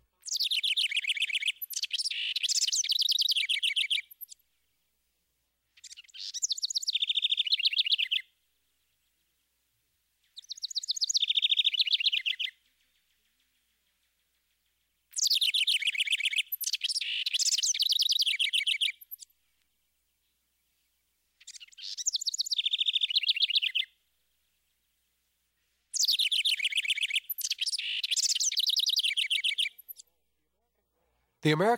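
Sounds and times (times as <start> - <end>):
house wren singing bubbly rising-then-cascading song bursts: 0.2 - 4.4, 5.8 - 8.3, 10.2 - 19.3, 21.4 - 24.0, 25.9 - 30.1
speech: 31.5 - 31.7.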